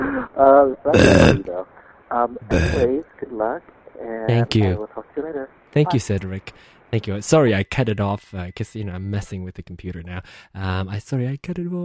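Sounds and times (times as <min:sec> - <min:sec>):
speech: 0:00.4 - 0:11.8
loud rough burp: 0:00.9 - 0:01.5, 0:02.5 - 0:03.0
short voiced grunts or murmurs: 0:00.9 - 0:01.5, 0:02.5 - 0:03.0.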